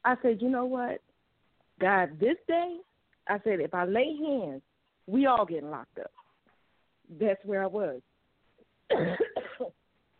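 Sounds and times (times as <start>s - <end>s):
speech: 0.0s - 1.1s, 1.8s - 6.2s, 7.1s - 8.1s, 8.9s - 9.8s
person coughing from a tickle in the throat: 8.9s - 9.8s.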